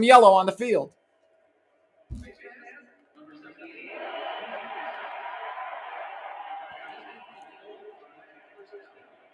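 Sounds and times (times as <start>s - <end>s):
speech: 0.0s - 1.0s
thump: 2.1s - 2.3s
large stadium crowd at an American football game cheering a face mask penalty call: 3.4s - 9.3s.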